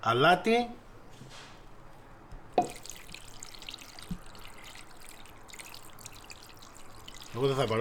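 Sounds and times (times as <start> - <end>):
speech: 0.0 - 1.4, 7.4 - 7.7
water pouring into a pot over chicken wings and drumsticks: 2.6 - 7.7.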